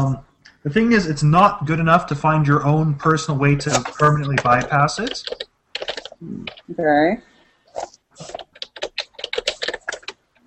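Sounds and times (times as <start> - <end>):
speech: 0.0 - 5.5, 6.2 - 8.4
loud computer keyboard typing: 3.6 - 6.6, 7.7 - 10.4.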